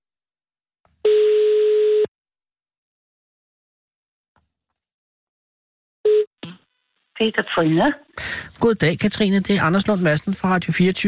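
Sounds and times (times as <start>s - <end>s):
telephone ringback tone on an outgoing call: 1.1s - 2.1s
speech: 7.2s - 11.0s.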